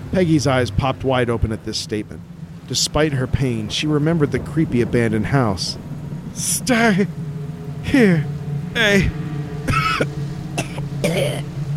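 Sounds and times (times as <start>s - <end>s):
steady low hum: 0.0s - 11.7s
speech: 0.1s - 7.2s, 7.8s - 10.1s
person coughing: 9.7s - 11.4s.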